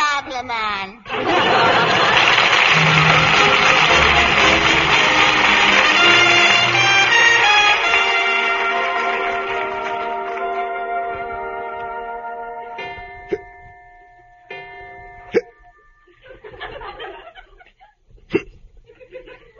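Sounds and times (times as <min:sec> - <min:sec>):
speech: 0:00.4 - 0:01.4
laughter: 0:01.0 - 0:06.5, 0:16.2 - 0:18.0, 0:18.9 - 0:19.5
sustained tones: 0:01.5 - 0:17.1
person hiccuping: 0:15.3 - 0:15.6, 0:18.3 - 0:18.6.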